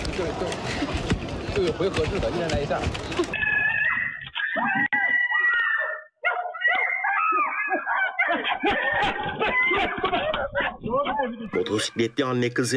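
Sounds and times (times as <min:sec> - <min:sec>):
speech: 0:00.2 - 0:03.4, 0:11.7 - 0:12.7
little girl screaming in fear: 0:03.4 - 0:09.9
laughter: 0:07.3 - 0:11.6.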